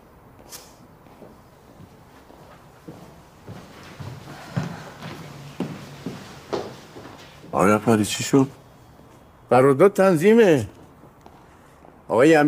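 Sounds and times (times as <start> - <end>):
footsteps at a walking pace on a hard floor: 0.4 - 9.2
speech: 7.6 - 8.6, 9.5 - 10.8, 12.1 - 12.4.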